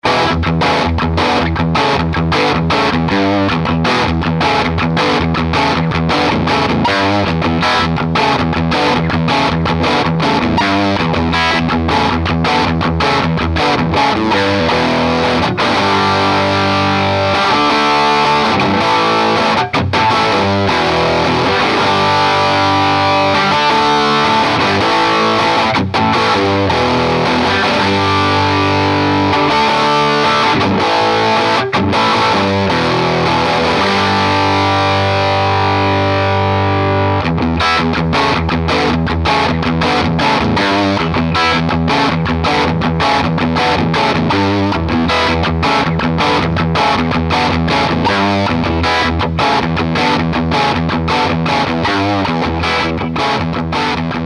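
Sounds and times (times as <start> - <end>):
humbucker guitar through AC30C2 amp with channels jumped: 0.0 - 54.2.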